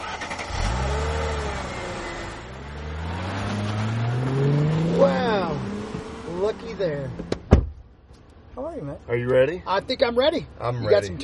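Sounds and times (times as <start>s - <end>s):
car engine revving as the vehicle accelerates: 0.0s - 7.4s
speech: 9.1s - 11.2s.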